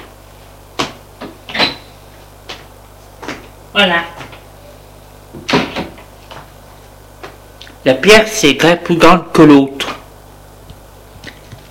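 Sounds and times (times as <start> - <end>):
door opening with a creaking scrape: 1.5 - 1.9
speech: 3.8 - 4.3, 7.8 - 10.0.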